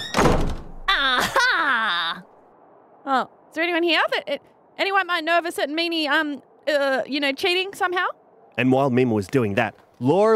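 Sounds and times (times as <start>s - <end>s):
door being forced open: 0.0s - 0.9s
person exclaiming: 0.9s - 2.3s
speech: 3.1s - 10.3s.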